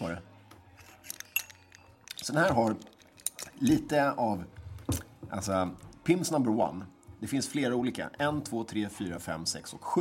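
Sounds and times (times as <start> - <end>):
drinking glasses clinking in a toast: 0.8 - 3.9
speech: 2.3 - 2.9, 3.6 - 4.6, 5.3 - 9.9.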